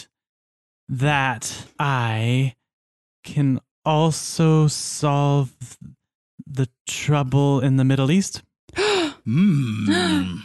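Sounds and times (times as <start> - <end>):
speech: 0.9 - 2.6, 3.2 - 10.4
person giving a loud voiced gasp: 8.7 - 10.4.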